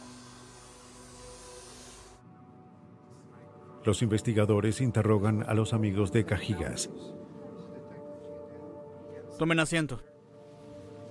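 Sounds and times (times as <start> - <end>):
vacuum cleaner cleaning a car interior: 0.0 - 2.2
speech: 3.8 - 7.3, 9.4 - 10.1.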